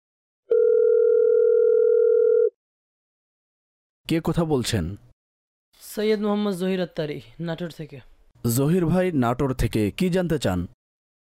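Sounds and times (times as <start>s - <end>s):
telephone dial tone as a call is connected: 0.5s - 2.6s
speech: 4.1s - 5.1s, 6.0s - 10.8s.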